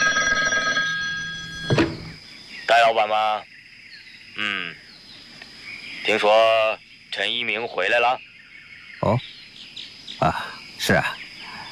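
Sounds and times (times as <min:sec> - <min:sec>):
telephone bell ringing with a metallic trill: 0:00.0 - 0:02.2
speech: 0:01.7 - 0:02.0, 0:02.9 - 0:03.5, 0:04.4 - 0:04.8, 0:06.1 - 0:08.3, 0:09.0 - 0:09.3, 0:10.2 - 0:11.2.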